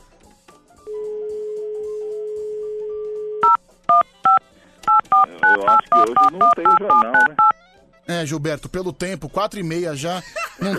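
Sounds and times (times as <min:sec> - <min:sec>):
telephone dial tone: 0:02.6 - 0:07.5
telephone keypad dialing beeps: 0:03.3 - 0:07.5
speech: 0:06.0 - 0:07.5, 0:08.1 - 0:10.7
laughter: 0:10.2 - 0:10.7.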